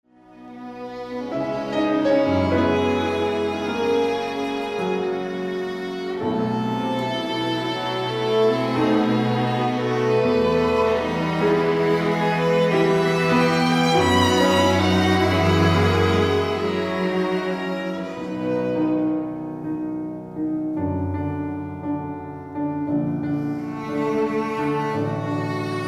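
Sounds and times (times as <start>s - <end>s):
cello: 0.0s - 25.8s
piano: 0.0s - 25.8s
two violins: 0.1s - 20.3s, 22.7s - 25.8s.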